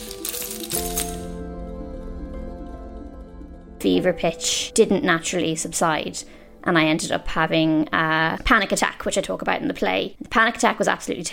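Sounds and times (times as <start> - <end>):
keys jingling as they are picked up: 0.0 - 1.4
steady low tonal hum: 0.8 - 7.2
speech: 3.8 - 11.3.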